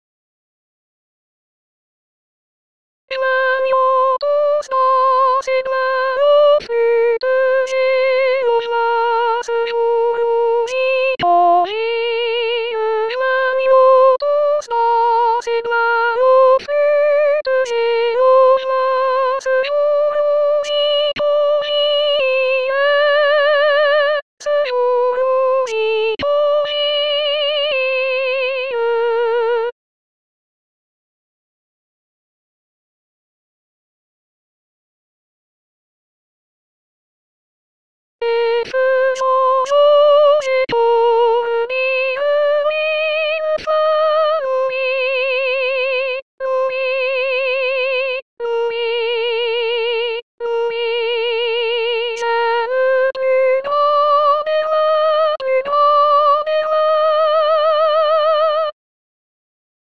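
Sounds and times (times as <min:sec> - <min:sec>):
B-flat soprano flutes playing: 0:03.1 - 0:29.7, 0:38.2 - 0:58.8.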